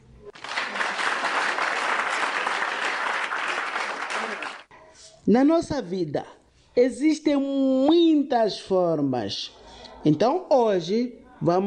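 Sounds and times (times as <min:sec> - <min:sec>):
group applauding: 0:00.3 - 0:04.7
speech: 0:05.3 - 0:11.6.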